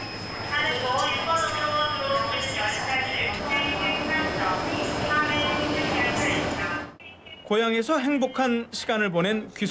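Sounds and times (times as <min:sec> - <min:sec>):
train rumbling into a station platform: 0:00.0 - 0:07.0
indistinct voices: 0:00.4 - 0:07.4
speech: 0:07.5 - 0:09.6.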